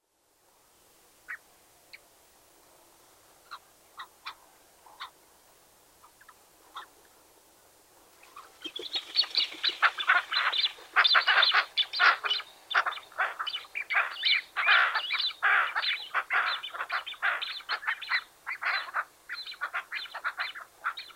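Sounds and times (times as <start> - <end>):
Ashy-headed Goose Chloephaga poliocephala calling: 8.4 - 21.1.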